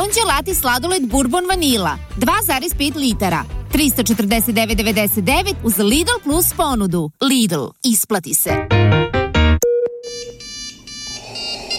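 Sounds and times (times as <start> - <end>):
speech: 0.0 - 9.0
electronic video call ringtone: 9.6 - 11.7.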